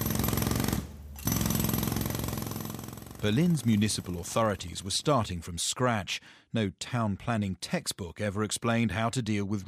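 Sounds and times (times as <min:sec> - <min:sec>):
pneumatic drill hammering at street level in Berlin amid reconstruction work: 0:00.0 - 0:04.3
speech: 0:03.2 - 0:09.6.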